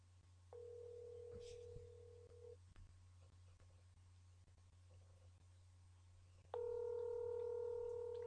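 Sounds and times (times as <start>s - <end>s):
low electrical hum: 0.0s - 8.2s
telephone ringback tone of an unanswered call: 0.6s - 2.6s, 6.6s - 8.2s.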